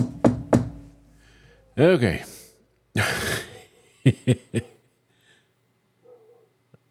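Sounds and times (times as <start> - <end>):
knocks on wood: 0.0 - 0.8
faint steady hum: 0.0 - 6.8
speech: 1.8 - 2.3, 3.0 - 3.2, 4.0 - 4.7.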